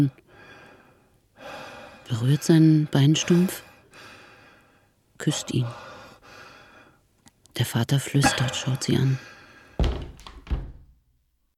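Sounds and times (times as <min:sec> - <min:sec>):
speech: 0:00.0 - 0:00.2, 0:01.4 - 0:03.7, 0:05.2 - 0:05.9, 0:07.6 - 0:09.3
bedroom door pushed shut by hand: 0:09.8 - 0:10.9.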